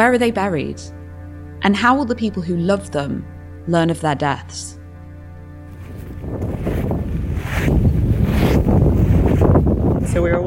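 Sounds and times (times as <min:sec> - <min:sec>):
speech: 0:00.0 - 0:01.0, 0:01.6 - 0:04.8, 0:10.1 - 0:10.4
strong wind buffeting the microphone in a cemetery: 0:05.7 - 0:10.4.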